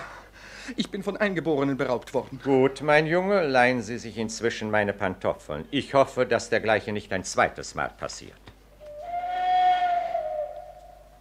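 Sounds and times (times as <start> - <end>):
speech: 0.7 - 8.5
English railway company steam train whistle, fired with naphtha: 8.9 - 11.1.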